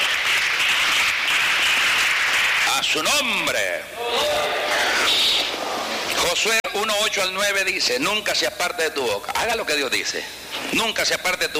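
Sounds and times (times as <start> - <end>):
congregation applauding during a church service: 0.0 - 3.2
speech: 2.8 - 5.6, 6.2 - 11.5.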